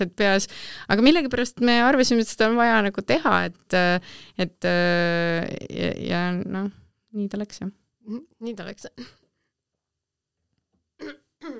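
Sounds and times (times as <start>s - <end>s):
speech: 0.0s - 9.2s, 11.0s - 11.5s
person clearing throat: 11.0s - 11.5s.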